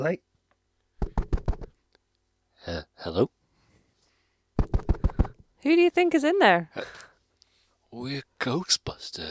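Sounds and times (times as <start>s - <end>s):
speech: 0.0s - 0.3s, 2.6s - 3.4s, 5.6s - 7.1s, 7.9s - 9.2s
knocks on a hollow box: 1.0s - 1.7s, 4.6s - 5.4s.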